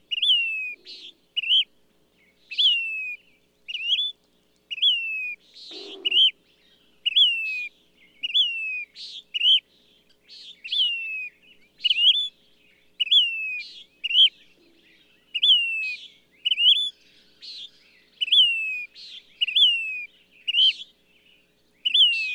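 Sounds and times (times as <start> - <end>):
bird whistling phrases: 0.1 - 1.7, 2.5 - 6.4, 7.1 - 9.6, 10.4 - 12.4, 13.0 - 14.4, 15.4 - 20.9, 21.8 - 22.3.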